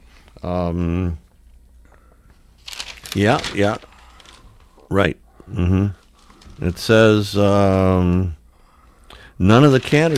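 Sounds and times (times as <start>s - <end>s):
speech: 0.4s - 1.2s, 3.1s - 3.9s, 4.9s - 6.0s, 6.6s - 8.4s, 9.4s - 10.1s
newspaper page being turned: 2.6s - 4.7s, 6.0s - 8.0s, 9.5s - 10.1s.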